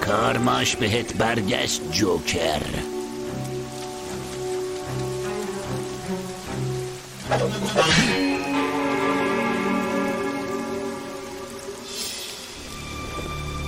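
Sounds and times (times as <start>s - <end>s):
steady rain falling: 0.0s - 13.6s
speech: 0.1s - 3.0s, 7.3s - 8.3s
brief louder splashing burst: 2.8s - 13.6s.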